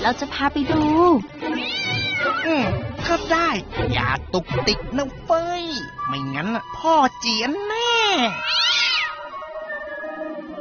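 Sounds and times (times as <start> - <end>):
speech: 0.0 - 8.6
cat meowing: 1.5 - 2.8, 8.1 - 10.6.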